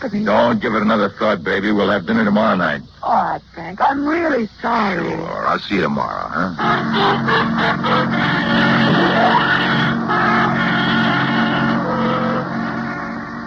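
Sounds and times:
speech: 0:00.0 - 0:09.8
taxi cab driving away: 0:06.0 - 0:13.4.

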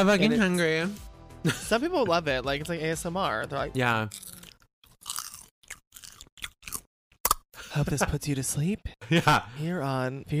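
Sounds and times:
speech: 0:00.0 - 0:04.4, 0:07.8 - 0:10.3
person chewing popcorn: 0:04.1 - 0:07.4.

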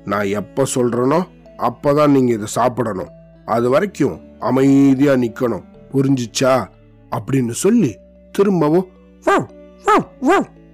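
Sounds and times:
speech: 0:00.1 - 0:10.6
human voice mimicking a dog barking: 0:09.2 - 0:10.6.

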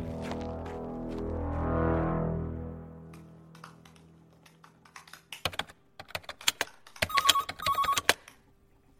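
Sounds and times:
low droning tone: 0:00.0 - 0:04.9
phone ringing in electronic bursts from a hidden-number call: 0:07.0 - 0:08.2.

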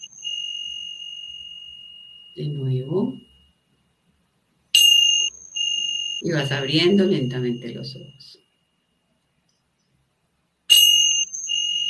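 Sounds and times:
meditation bell struck during a guided mindfulness meditation: 0:00.0 - 0:03.8, 0:04.7 - 0:09.0, 0:10.7 - 0:11.8
speech: 0:02.4 - 0:03.2, 0:06.2 - 0:08.4.

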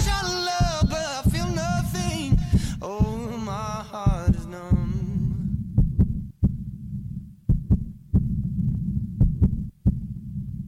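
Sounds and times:
layered singing voices: 0:00.0 - 0:05.2
child's heartbeat thumping: 0:00.0 - 0:10.6.

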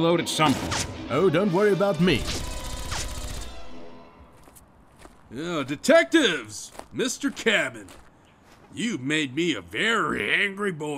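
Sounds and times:
speech: 0:00.0 - 0:02.4, 0:05.3 - 0:08.0, 0:08.7 - 0:10.9
laser gunfire in a video game: 0:02.1 - 0:03.8.

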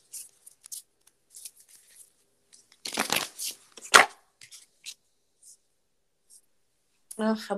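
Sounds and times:
deck of cards being shuffled: 0:00.0 - 0:05.6
speech: 0:07.2 - 0:07.5.

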